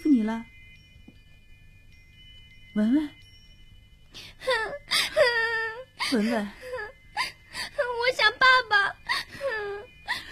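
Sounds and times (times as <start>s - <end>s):
speech: 0.3s - 0.5s, 2.8s - 3.2s, 6.1s - 6.6s
young child crying in wailing whimpering bursts: 4.4s - 8.0s, 9.0s - 10.2s.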